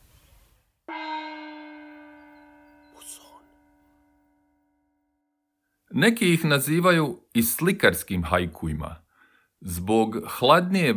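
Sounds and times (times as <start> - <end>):
bell struck once ringing: 0.9 - 5.0
speech: 6.0 - 9.0, 9.6 - 10.9.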